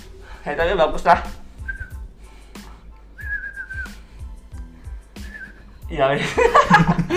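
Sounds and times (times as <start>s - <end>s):
low rhythmic thumping: 0.0s - 7.1s
speech: 0.4s - 1.4s, 5.9s - 7.1s
person whistling clear sustained tones: 1.5s - 2.1s, 3.1s - 4.3s, 5.2s - 5.8s
laughter: 6.2s - 7.1s.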